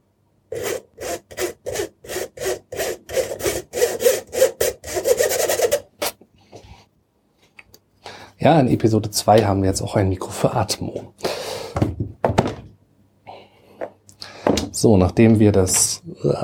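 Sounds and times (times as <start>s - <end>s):
flour pushed through a simple sieve: 0.5s - 5.9s
speech: 8.4s - 11.2s, 14.8s - 16.4s.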